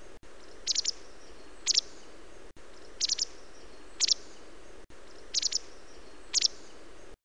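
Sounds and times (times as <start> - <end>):
background hiss: 0.0 - 7.2
white wagtail calls: 0.6 - 2.0, 3.0 - 4.3, 5.3 - 6.6.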